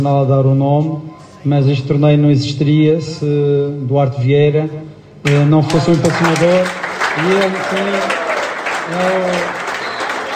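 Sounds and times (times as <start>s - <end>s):
speech: 0.0s - 8.2s, 8.9s - 9.6s
crowd clapping at a tournament gathering: 5.3s - 10.3s.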